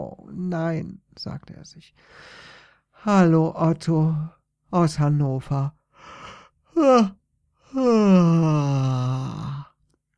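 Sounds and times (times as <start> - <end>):
speech: 0.0 - 6.2, 6.8 - 8.6
person yawning: 6.7 - 9.8.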